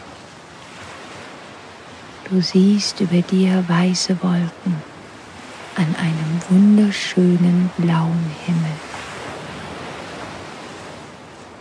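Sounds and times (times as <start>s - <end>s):
ocean surf: 0.0s - 11.5s
speech: 2.2s - 4.9s, 5.8s - 9.0s.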